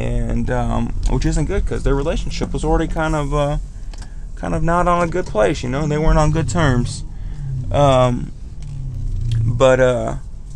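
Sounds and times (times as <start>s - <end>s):
car engine rumbling while being parked: 0.0s - 10.5s
speech: 0.4s - 3.7s, 4.4s - 7.1s, 7.7s - 8.4s, 9.6s - 10.2s
short rising tonal bursts: 5.8s - 9.6s.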